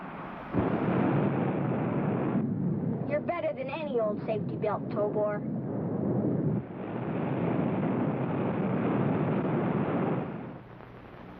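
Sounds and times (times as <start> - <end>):
rocket blast-off roar: 0.5 - 3.2, 4.4 - 10.6
speech: 3.9 - 6.2.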